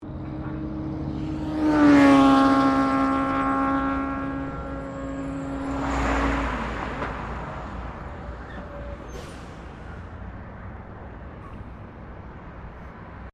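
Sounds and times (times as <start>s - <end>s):
motorbike passing by: 0.0s - 8.8s
general traffic: 0.0s - 13.3s.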